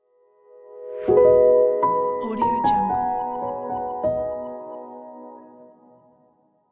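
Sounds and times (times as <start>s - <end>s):
light piano logo jingle: 1.0s - 6.2s.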